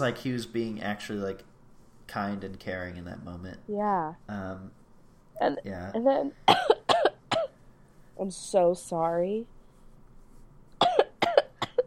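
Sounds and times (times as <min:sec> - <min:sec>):
speech: 0:00.0 - 0:01.5, 0:02.1 - 0:04.8, 0:05.4 - 0:06.6, 0:08.2 - 0:09.6
person coughing: 0:06.5 - 0:07.6, 0:10.8 - 0:11.8.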